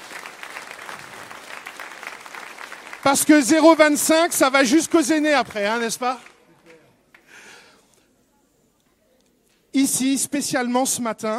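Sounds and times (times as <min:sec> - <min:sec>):
church congregation applauding: 0:00.0 - 0:07.4
speech: 0:03.0 - 0:06.3, 0:09.9 - 0:11.3.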